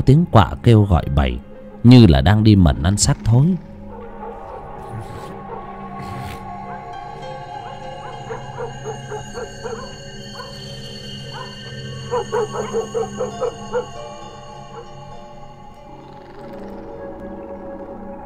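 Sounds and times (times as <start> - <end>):
steady drone: 0.0 - 18.2
speech: 0.1 - 3.7
dogs barking faintly at the end of a street at night: 1.5 - 1.9, 3.7 - 17.2.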